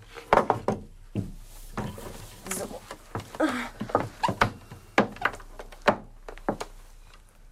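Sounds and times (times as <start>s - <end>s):
wooden knocks and thuds of furniture being set down: 0.3s - 2.2s, 2.9s - 6.8s
furniture dragged and scraping: 1.4s - 3.3s
person speaking a brief word: 2.4s - 3.9s.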